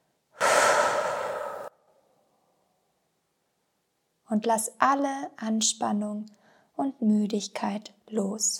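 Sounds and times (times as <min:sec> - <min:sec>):
deep breath in and slow breath out during a guided breathing exercise: 0:00.4 - 0:02.3
speech: 0:04.3 - 0:08.5.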